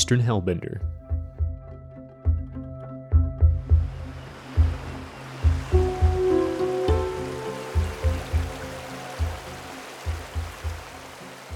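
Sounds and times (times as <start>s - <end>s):
speech: 0.1s - 1.0s
rhythmic pulsing musical beat: 0.9s - 11.5s
flowing river water rushing: 3.8s - 11.5s.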